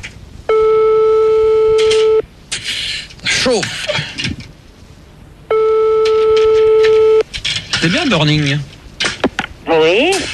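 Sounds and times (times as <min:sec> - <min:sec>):
long steady telephone tone: 0:00.5 - 0:02.2, 0:05.5 - 0:07.2
speech: 0:03.4 - 0:04.1, 0:07.8 - 0:08.7, 0:09.7 - 0:10.3.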